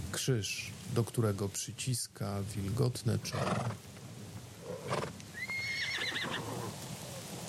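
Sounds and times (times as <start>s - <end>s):
speech: 0.2s - 3.9s
horse whinnying: 3.3s - 3.8s, 4.6s - 6.7s.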